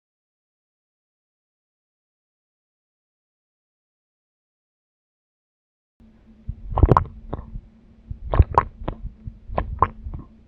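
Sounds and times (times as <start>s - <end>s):
landscape gulps: 6.7s - 7.5s, 8.2s - 10.3s.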